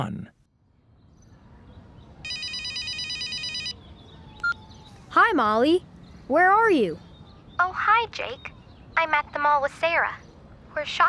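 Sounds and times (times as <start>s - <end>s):
telephone ringing: 2.2s - 3.8s
speech: 5.2s - 10.2s, 10.8s - 11.0s.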